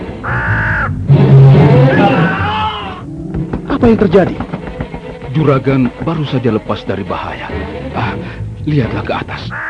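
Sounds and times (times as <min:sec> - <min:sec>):
bird cawing: 0:00.2 - 0:01.0, 0:02.0 - 0:03.1
speech: 0:03.9 - 0:04.6, 0:05.3 - 0:09.6.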